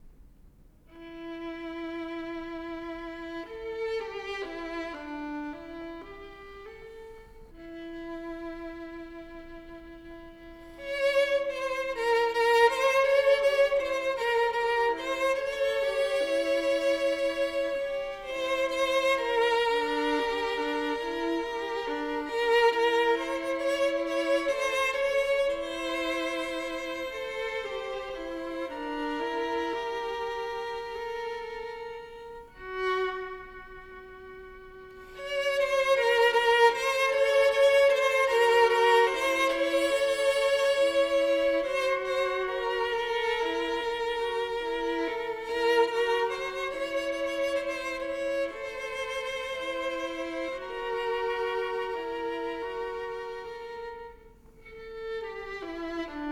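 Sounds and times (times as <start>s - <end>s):
duet for two violins: 0.8s - 56.2s.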